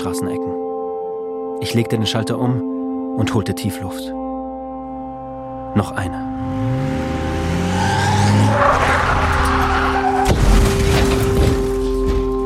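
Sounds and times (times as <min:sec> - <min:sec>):
speech: 0:00.0 - 0:00.6, 0:01.6 - 0:04.2, 0:05.7 - 0:06.9
SUV engine revving: 0:06.3 - 0:10.2
SUV tires squealing and skidding: 0:06.6 - 0:11.1
SUV crashing into a restaurant wall: 0:08.5 - 0:12.4
SUV tire bursting: 0:08.7 - 0:11.8.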